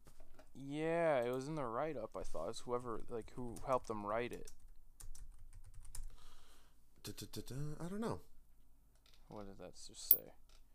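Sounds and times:
speech: 0:00.6 - 0:04.6, 0:07.0 - 0:08.3, 0:09.3 - 0:10.4
rapid typing on a computer keyboard: 0:03.5 - 0:06.1.

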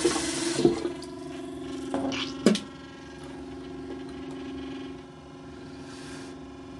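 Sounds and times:
tap water running: 0:00.0 - 0:04.9
low humming undertone: 0:00.0 - 0:06.7.

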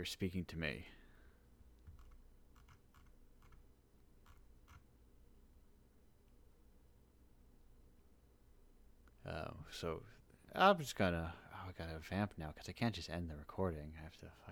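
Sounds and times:
speech: 0:00.0 - 0:01.0, 0:09.3 - 0:14.5
room hum: 0:00.0 - 0:14.5
typing on a computer keyboard: 0:01.8 - 0:03.6, 0:04.2 - 0:04.9.

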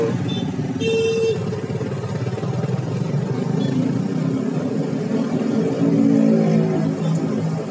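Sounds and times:
traffic noise on a busy road: 0:00.0 - 0:07.6
brief high horn-like tone: 0:00.2 - 0:01.5.

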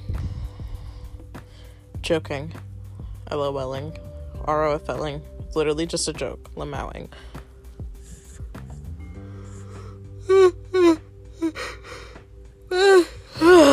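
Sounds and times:
speech: 0:02.1 - 0:02.7, 0:03.3 - 0:07.3
loud strained yawn: 0:09.4 - 0:13.7.

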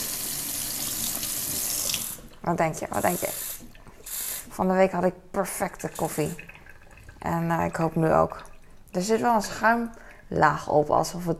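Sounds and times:
water running from a kitchen tap: 0:00.0 - 0:04.6, 0:05.8 - 0:08.8
speech: 0:02.4 - 0:03.6, 0:04.6 - 0:06.5, 0:07.2 - 0:11.3.

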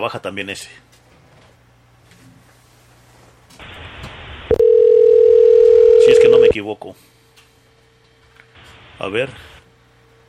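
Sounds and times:
speech: 0:00.0 - 0:01.0, 0:06.6 - 0:07.2, 0:09.0 - 0:09.6
telephone dial tone on a radio station's call-in line: 0:04.5 - 0:06.6.

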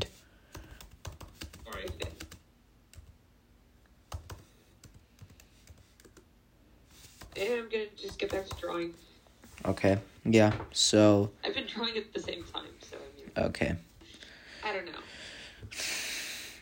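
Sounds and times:
computer keyboard typing a group chat message: 0:00.6 - 0:03.1, 0:04.1 - 0:06.2, 0:08.0 - 0:08.9
speech: 0:07.5 - 0:13.9, 0:14.6 - 0:16.0.

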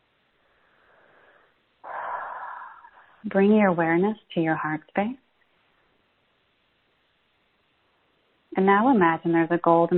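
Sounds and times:
deep breath in and out through the mouth: 0:00.4 - 0:03.2
speech: 0:03.2 - 0:05.2, 0:08.6 - 0:09.9.

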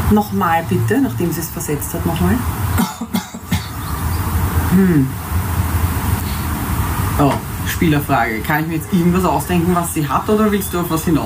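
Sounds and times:
low steady hum: 0:00.0 - 0:11.2
speech: 0:00.1 - 0:03.1, 0:04.8 - 0:05.2, 0:07.2 - 0:11.2
light coughs: 0:02.8 - 0:03.8.

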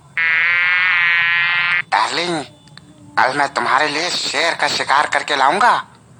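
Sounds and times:
mosquito buzzing: 0:00.1 - 0:01.9
speech: 0:02.0 - 0:02.6, 0:03.2 - 0:05.9.

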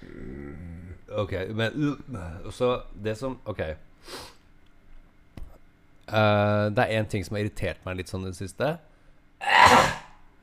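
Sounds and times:
speech: 0:01.1 - 0:04.4, 0:06.1 - 0:09.9
single sharp explosive cough: 0:09.4 - 0:10.2.

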